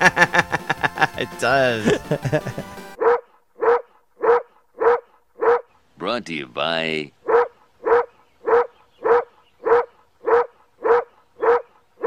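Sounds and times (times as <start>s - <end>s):
laughter: 0.0s - 2.8s
game music track: 0.7s - 3.0s
speech: 1.2s - 2.8s, 6.3s - 7.2s
dog-like bark in a game music track: 3.0s - 5.7s, 7.2s - 12.0s.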